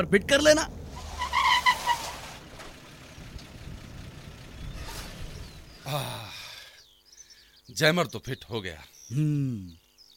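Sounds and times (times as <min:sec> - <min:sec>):
speech: 0:00.0 - 0:00.8, 0:05.9 - 0:06.3, 0:07.7 - 0:09.8
car engine drone turning into a crowded lane: 0:00.0 - 0:06.7.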